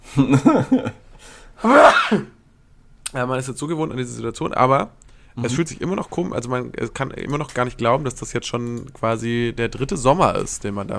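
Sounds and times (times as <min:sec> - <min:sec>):
speech: 0:00.2 - 0:02.4, 0:03.1 - 0:10.9
person sneezing: 0:01.6 - 0:02.4.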